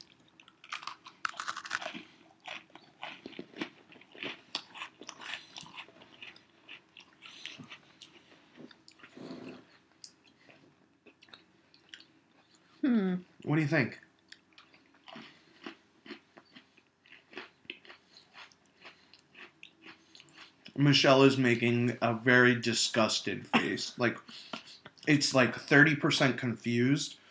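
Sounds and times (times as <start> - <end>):
crunchy chewing of Oreo cookies: 0.0 - 12.7, 14.2 - 20.8
speech: 13.6 - 14.0, 20.8 - 27.2.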